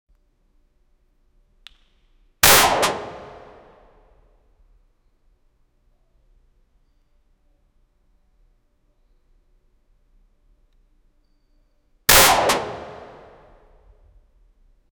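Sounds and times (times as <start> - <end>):
gunshot: 2.4 - 3.8, 12.1 - 13.6.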